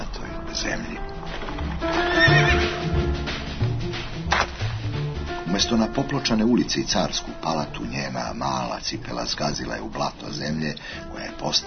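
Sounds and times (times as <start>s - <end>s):
speech: 0.6s - 1.1s, 5.6s - 11.6s
hooves clip-clopping: 1.0s - 5.9s
carriage rumbling: 1.1s - 2.9s
horse whinnying: 1.8s - 2.8s.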